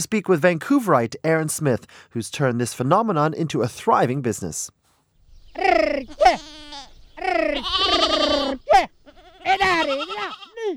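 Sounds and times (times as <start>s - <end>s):
speech: 0.0s - 4.8s, 5.6s - 6.4s, 7.3s - 10.7s
shepherd calling to round up the flock: 5.5s - 10.6s
flock of sheep and goats bleating in rocky hills outside Altamura in Puglia Italy: 5.6s - 10.6s.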